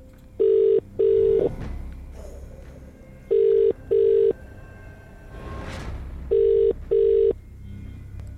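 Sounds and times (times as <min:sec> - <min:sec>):
outgoing telephone call ringing tone: 0:00.4 - 0:01.5, 0:03.3 - 0:04.4, 0:06.3 - 0:07.4.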